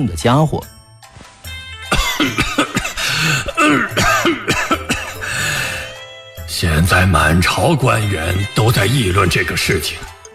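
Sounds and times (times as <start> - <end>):
speech: 0.0 - 0.8, 3.2 - 4.8, 6.6 - 10.1
man coughing violently in harsh hacking bursts: 1.9 - 5.6
man breathing strained between coughing fits: 2.9 - 3.6, 5.0 - 6.0.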